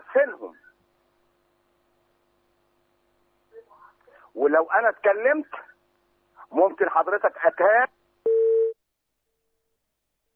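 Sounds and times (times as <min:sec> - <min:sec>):
speech: 0:00.2 - 0:00.6, 0:04.4 - 0:05.7, 0:06.5 - 0:08.0
telephone tone after a call disconnects: 0:08.3 - 0:08.8.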